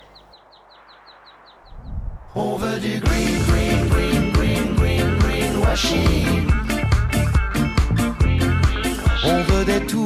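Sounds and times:
speech: 2.3 - 3.8, 5.7 - 6.6
upbeat pop song with singer, drum beat and band backing: 2.3 - 10.0.

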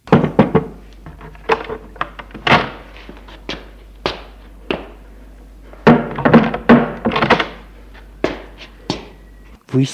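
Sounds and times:
door clunking and rattling as it is handled and opened: 0.0 - 2.9, 5.9 - 7.6
speech: 9.7 - 9.9.

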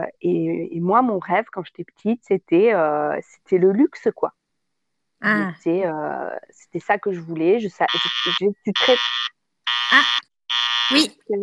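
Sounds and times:
speech: 0.0 - 4.4, 5.2 - 11.4
mobile phone ringing with harsh buzzing alarm-style ringtone: 7.9 - 11.1.

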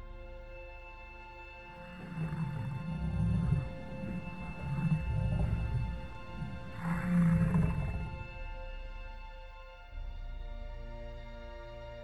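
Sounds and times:
steady droning background: 0.0 - 12.0
deep moaning cries of large long-horned furry beasts: 1.7 - 8.4.

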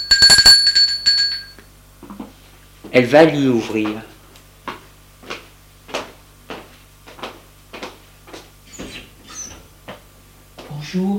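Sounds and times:
doorbell ringing in bright high metallic dings: 0.0 - 1.6
speech: 2.9 - 4.1, 10.9 - 11.1.

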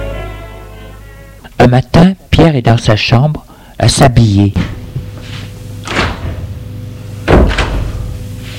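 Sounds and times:
speech: 1.7 - 4.8
bedroom door opening as someone walks in: 5.8 - 6.5, 7.3 - 8.0.

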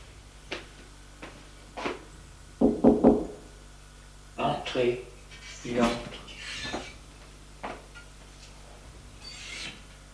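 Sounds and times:
knocking on a doctor's office door in a hospital: 2.6 - 3.4
speech: 4.7 - 6.2.

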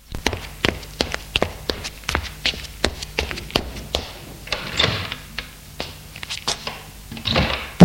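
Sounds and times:
footsteps thudding up a wooden staircase: 0.0 - 6.8
upstairs door creaking and knocking as it is opened: 4.5 - 5.3.

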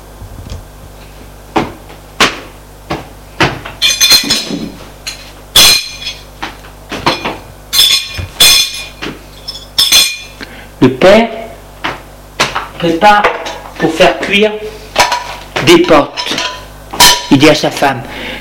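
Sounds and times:
dishes clinking and clattering as a table is set for dinner: 3.8 - 6.2, 7.0 - 10.3, 15.0 - 17.3
speech: 10.8 - 11.4, 12.8 - 14.6, 15.7 - 16.3, 17.3 - 18.3.

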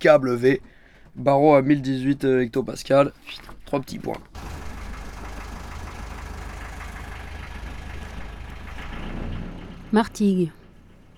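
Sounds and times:
speech: 0.0 - 4.6, 9.9 - 10.6
sailboat engine idling: 4.3 - 11.1.

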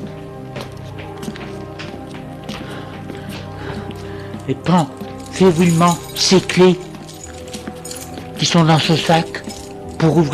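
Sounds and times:
quick running footsteps climbing a staircase to the top floor: 0.0 - 9.9
speech: 4.5 - 6.9, 8.4 - 9.4, 10.0 - 10.3.

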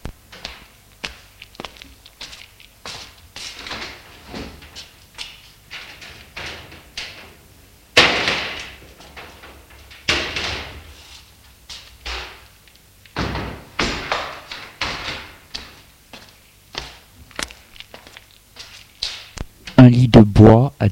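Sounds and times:
window shutters being pushed open with clattering knocks and scrapes: 3.1 - 11.0, 12.0 - 15.9
speech: 20.5 - 20.8.

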